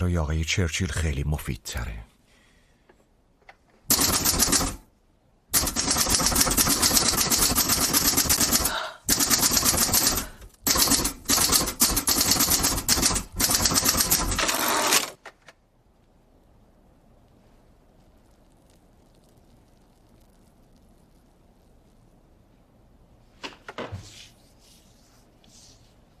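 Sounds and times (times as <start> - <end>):
speech: 0.0 - 2.1
rapid continuous typewriter clatter: 3.9 - 4.8, 5.5 - 15.2.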